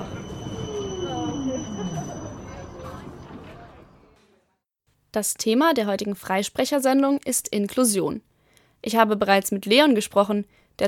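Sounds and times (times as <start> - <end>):
tram wheels letting out a falling metallic squeal: 0.0 - 4.2
speech: 5.2 - 10.8.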